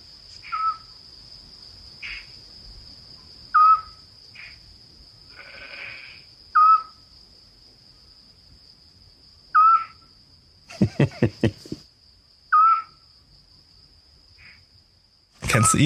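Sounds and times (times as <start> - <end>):
steady high cricket drone: 0.0 - 15.8
Eurasian scops owl whistled call at night: 0.5 - 0.9, 3.5 - 4.0, 6.6 - 7.0, 9.6 - 10.0, 12.5 - 13.0
laughter: 10.7 - 11.8
speech: 11.0 - 11.6, 15.6 - 15.8.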